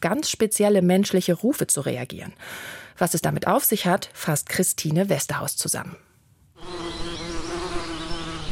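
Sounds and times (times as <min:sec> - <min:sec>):
speech: 0:00.0 - 0:06.8
many wild bees buzzing around a nest: 0:06.6 - 0:08.5.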